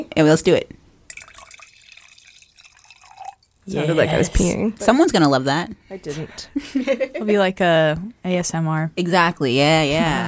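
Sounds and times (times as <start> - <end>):
speech: 0.0 - 0.8, 3.7 - 10.2
person imitating wine being poured into a glass: 1.1 - 4.6
laughter: 6.6 - 7.3.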